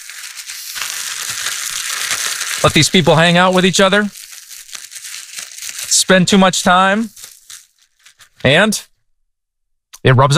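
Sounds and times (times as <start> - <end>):
Ziploc plastic bag being zipped shut: 0.0 - 8.5
speech: 2.6 - 4.2, 6.1 - 7.2, 8.4 - 8.9, 10.0 - 10.3.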